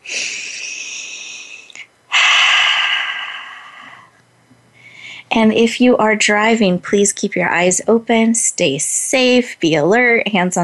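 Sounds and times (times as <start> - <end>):
person breathing during a guided group breathing exercise: 0.0 - 5.3
speech: 5.4 - 10.6.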